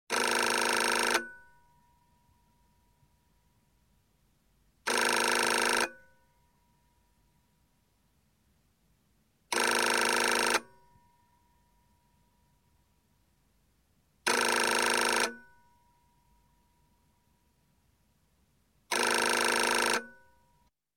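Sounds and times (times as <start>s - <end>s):
European telephone ringing in an office: 0.1s - 1.6s, 4.9s - 6.2s, 9.5s - 11.0s, 14.3s - 15.6s, 18.9s - 20.4s.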